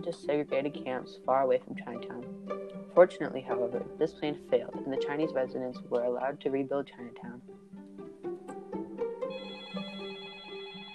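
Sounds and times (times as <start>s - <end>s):
speech: 0.0s - 7.5s
telephone ringing: 9.2s - 10.9s.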